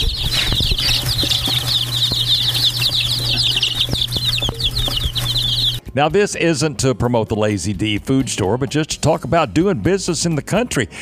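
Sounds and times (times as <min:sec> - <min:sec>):
baby chicks cheeping: 0:00.0 - 0:05.9
speech: 0:06.0 - 0:11.0.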